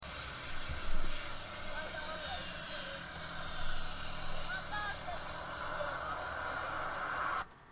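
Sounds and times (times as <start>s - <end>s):
braking: 0.0s - 7.7s.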